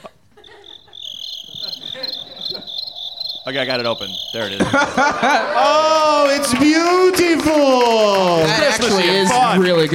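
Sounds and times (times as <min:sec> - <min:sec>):
laughter: 0:00.0 - 0:02.9, 0:03.5 - 0:07.2
cricket chirping with a high bright trill: 0:00.0 - 0:05.4
speech: 0:03.5 - 0:09.9.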